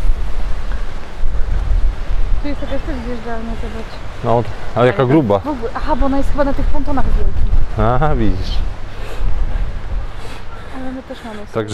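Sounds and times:
strong wind buffeting the microphone: 0.0 - 11.7
surf-like wash: 0.0 - 11.7
speech: 2.4 - 8.8, 10.8 - 11.7.

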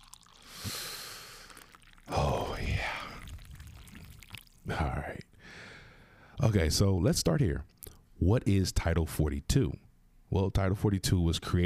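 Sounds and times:
drink pouring in a hissing foamy stream: 0.0 - 4.6
speech: 6.5 - 11.6.

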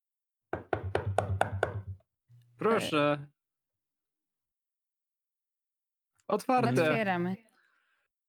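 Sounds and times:
knocking on a door: 0.6 - 2.0
speech: 2.6 - 3.3, 6.3 - 7.5.

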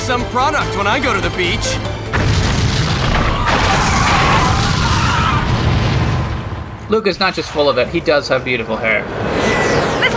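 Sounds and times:
speech: 0.1 - 2.2, 6.9 - 9.9
missile explosion: 2.1 - 6.9
loud sustained boom with rumbling low end and crackling noise: 2.1 - 7.7.

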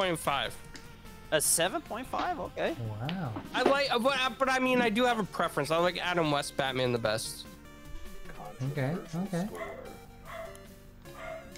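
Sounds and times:
speech: 0.0 - 0.7, 1.3 - 7.6, 8.5 - 10.0
dog yelping barks: 9.5 - 11.5.

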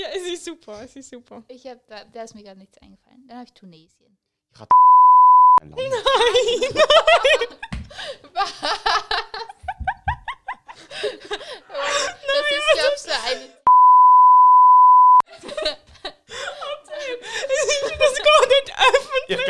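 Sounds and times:
people in lively animated conversation with laughter: 0.0 - 1.4, 5.6 - 13.7, 15.2 - 19.4
speech: 0.4 - 9.0
censor bleep tone: 4.7 - 5.6, 13.7 - 15.2.

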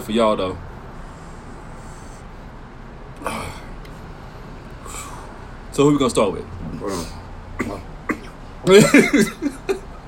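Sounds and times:
speech: 0.1 - 0.7, 3.2 - 3.5, 5.8 - 7.9, 8.6 - 9.5
man coughing and hacking: 6.7 - 9.9.

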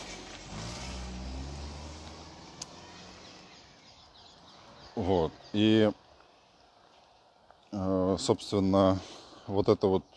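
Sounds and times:
cars driving past on nearby road: 0.0 - 7.2
speech: 5.0 - 6.0, 7.7 - 10.1.

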